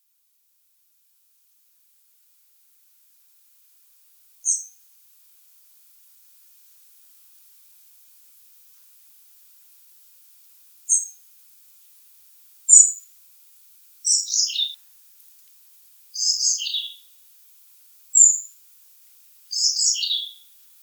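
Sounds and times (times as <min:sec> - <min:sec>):
European robin Erithacus rubecula singing: 0:04.4 - 0:04.8, 0:10.9 - 0:11.2, 0:12.7 - 0:13.0, 0:14.0 - 0:14.8, 0:16.2 - 0:17.1, 0:18.1 - 0:18.5, 0:19.5 - 0:20.5.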